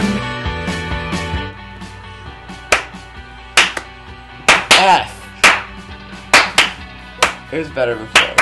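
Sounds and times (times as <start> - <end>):
people clapping along to a song: 2.7 - 3.0, 3.6 - 3.9, 4.5 - 7.4, 8.1 - 8.4
speech: 7.5 - 8.4.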